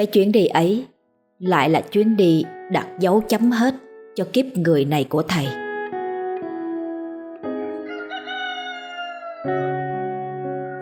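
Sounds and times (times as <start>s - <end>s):
speech: 0.0s - 5.6s, 9.4s - 9.6s
fighting roosters crowing at dawn: 7.8s - 10.8s.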